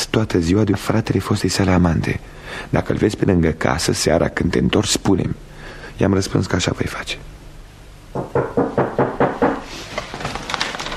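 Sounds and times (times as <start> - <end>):
speech: 0.2 - 7.3
hard rapid knocking on a door: 8.1 - 9.7.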